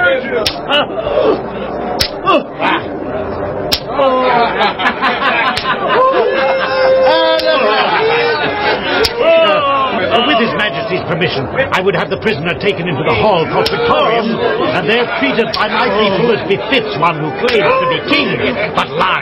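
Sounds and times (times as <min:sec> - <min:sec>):
murmuring crowd of agitated voices: 0:00.0 - 0:19.2
laughter: 0:00.1 - 0:03.2, 0:03.9 - 0:19.2
whip lashes cracking during a scourging: 0:00.4 - 0:00.6, 0:02.0 - 0:02.2, 0:03.7 - 0:03.9
speech: 0:11.8 - 0:19.2.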